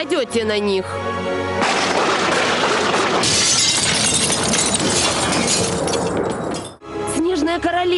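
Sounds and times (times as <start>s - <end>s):
speech: 0.0s - 1.8s, 4.9s - 6.4s, 7.6s - 7.9s
glass shards and debris tumbling: 1.6s - 6.8s
window glass shattering: 1.6s - 6.8s.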